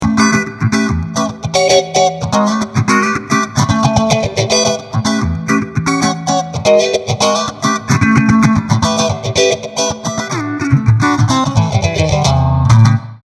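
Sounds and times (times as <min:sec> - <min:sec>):
electric guitar through a Twin Reverb amplifier with phaser: 0:00.0 - 0:13.2.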